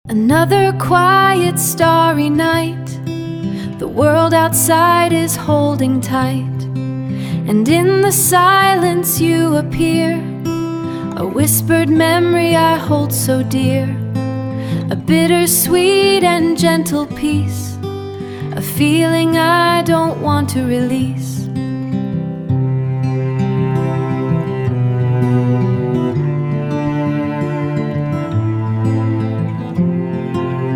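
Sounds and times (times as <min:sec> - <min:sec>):
acoustic song with English vocals: 0:00.1 - 0:30.7.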